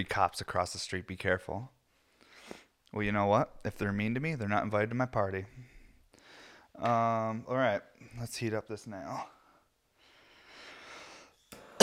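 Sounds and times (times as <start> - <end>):
speech: 0.0 - 1.8, 2.9 - 5.7, 6.8 - 9.4
raspy drawn-out wheezy breath: 2.0 - 2.8, 5.8 - 6.7, 10.0 - 11.8.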